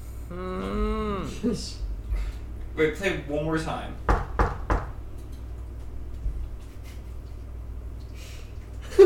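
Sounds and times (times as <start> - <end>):
low steady hum: 0.0 - 9.0
speech: 1.4 - 1.9, 2.8 - 4.1
knuckles knocking on a hard surface: 4.1 - 5.0.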